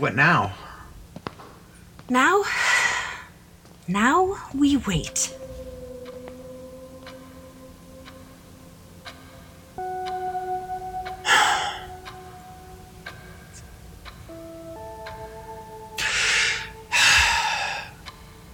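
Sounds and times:
speech: 0:00.0 - 0:00.6, 0:02.1 - 0:02.7, 0:03.9 - 0:05.4
clock ticking: 0:03.8 - 0:18.5
low sustained tone: 0:04.0 - 0:18.5.

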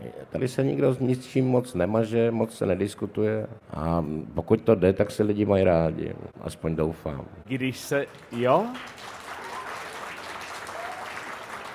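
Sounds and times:
speech: 0:00.1 - 0:09.1
audience applause in Ostrava: 0:08.1 - 0:11.7.

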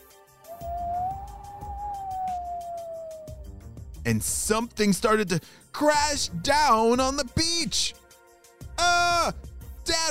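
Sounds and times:
howling wind: 0:00.5 - 0:03.5
speech: 0:04.1 - 0:08.0.

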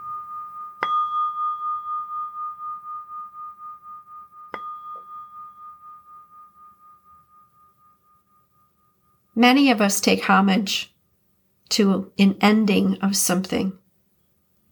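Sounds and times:
meditation bell struck for a mindfulness meditation: 0:00.0 - 0:09.4
speech: 0:09.4 - 0:10.9, 0:11.7 - 0:13.8.

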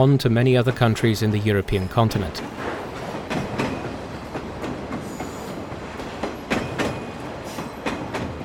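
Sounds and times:
speech: 0:00.0 - 0:02.7
China-Europe Railway Express freight train wheels clattering on rails: 0:02.4 - 0:08.4.

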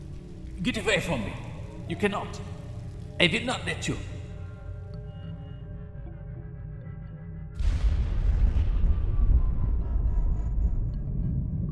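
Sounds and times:
speech: 0:00.6 - 0:02.6, 0:03.2 - 0:04.2
loud explosion with deep rumble echoing across open space: 0:07.6 - 0:11.6.

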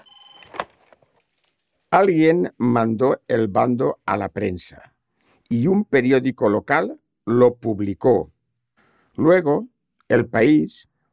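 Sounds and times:
telephone ringing with a bright electronic tone: 0:00.0 - 0:00.6
speech: 0:01.9 - 0:04.9, 0:05.5 - 0:08.3, 0:09.2 - 0:10.9.

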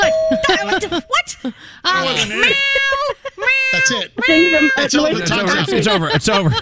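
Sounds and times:
laughter: 0:00.4 - 0:06.6
speech: 0:00.7 - 0:03.2, 0:03.8 - 0:06.6
person imitating a cat meow: 0:02.0 - 0:03.0, 0:03.6 - 0:04.9.

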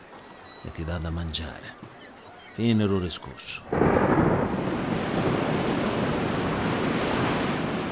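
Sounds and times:
speech: 0:00.6 - 0:02.0, 0:02.6 - 0:05.4
sea waves breaking on shore: 0:03.7 - 0:07.9.

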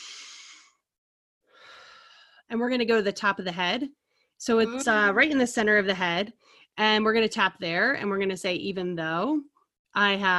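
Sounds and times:
deep breath in and out during a guided relaxation and tapping exercise: 0:00.0 - 0:00.8, 0:01.4 - 0:02.5
speech: 0:02.5 - 0:10.3.

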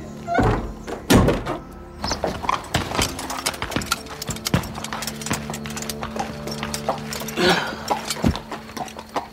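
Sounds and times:
heavy wooden door thudding shut: 0:00.3 - 0:03.2
rattling: 0:00.4 - 0:09.1.

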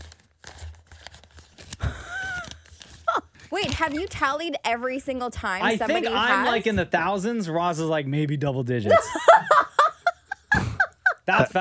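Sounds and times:
man flipping and rustling through book pages: 0:00.0 - 0:04.3
speech: 0:03.6 - 0:09.6, 0:11.3 - 0:11.5
laughter: 0:08.9 - 0:11.5.

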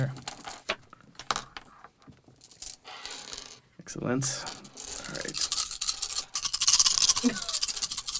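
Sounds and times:
four dice rolled into a dice tray: 0:00.0 - 0:00.6, 0:02.4 - 0:03.6, 0:04.4 - 0:08.1
speech: 0:03.9 - 0:04.6.

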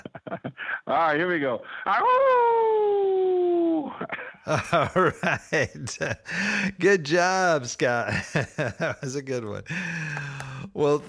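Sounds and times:
laughter: 0:00.0 - 0:00.6, 0:03.9 - 0:06.4, 0:08.0 - 0:09.2
speech: 0:00.4 - 0:02.8, 0:04.5 - 0:11.0
person imitating an old hound dog howl: 0:01.9 - 0:04.0.

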